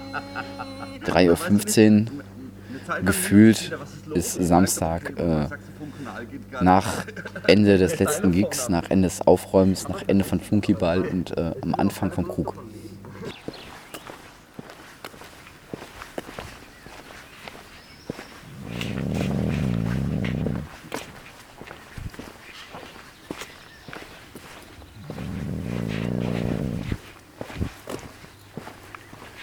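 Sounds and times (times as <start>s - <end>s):
laughter: 0.0s - 8.8s
speech: 0.1s - 12.7s
footsteps of people walking along a river: 13.3s - 29.4s
low rumbling noise: 18.4s - 20.8s, 24.8s - 27.7s.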